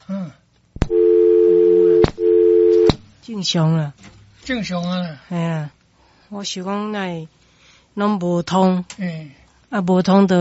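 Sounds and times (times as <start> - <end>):
telephone busy signal: 0.9 - 2.9
speech: 3.4 - 7.4, 8.0 - 10.3.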